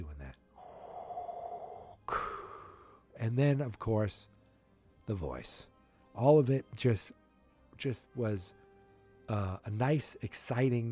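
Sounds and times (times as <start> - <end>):
voice imitating heavy mechanical respirator breathing: 0.6 - 3.1
speech: 3.2 - 4.3, 5.1 - 7.2, 7.8 - 8.6, 9.3 - 10.9.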